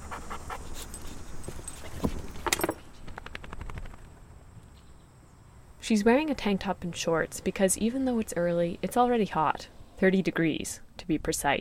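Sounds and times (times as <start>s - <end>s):
dog panting: 0.0s - 2.1s
faint outdoor hum: 0.0s - 11.6s
keys jingling: 0.7s - 2.8s
speech: 5.9s - 11.6s.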